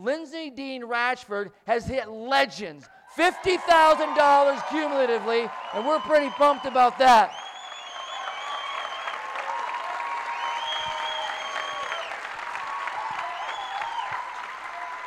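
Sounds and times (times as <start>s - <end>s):
speech: 0.0s - 7.4s
faint cheering: 3.0s - 15.0s
crowd applauding with many hands clapping: 3.1s - 15.0s.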